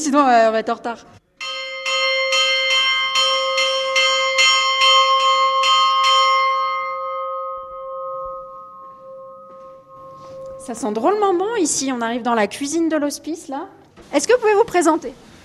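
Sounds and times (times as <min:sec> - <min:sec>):
speech: 0:00.0 - 0:01.2, 0:10.6 - 0:15.3
church bell of a mountain summit hospice rung for noon: 0:01.4 - 0:12.3
sustained metallic hum of a church bell: 0:06.4 - 0:12.3.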